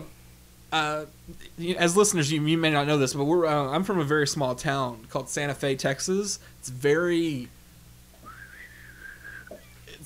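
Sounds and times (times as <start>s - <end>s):
speech: 0.7s - 7.6s
person attempting to whistle a western film theme: 8.2s - 9.7s.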